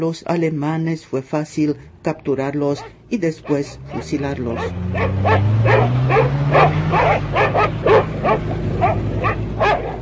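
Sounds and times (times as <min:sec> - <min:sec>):
speech: 0:00.0 - 0:09.4
low rumbling engine-like drone: 0:01.6 - 0:10.0
dogs barking during a manhunt: 0:02.6 - 0:10.0.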